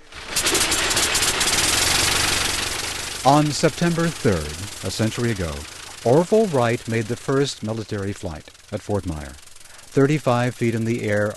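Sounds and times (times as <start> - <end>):
brand-new 1908 engine catching and running with propellers swung by hand: 0.0 - 11.3
speech: 3.2 - 9.4, 10.0 - 11.3.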